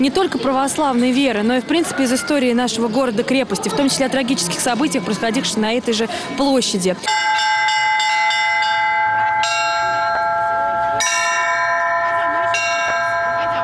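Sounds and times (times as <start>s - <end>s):
speech: 0.0s - 7.4s
festive church bell peal rung by children: 7.0s - 13.6s.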